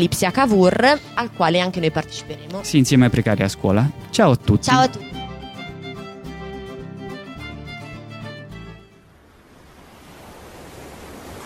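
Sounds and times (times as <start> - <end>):
speech: 0.0 - 5.2
music: 0.0 - 9.1
ocean surf breaking on the shore: 9.1 - 11.4.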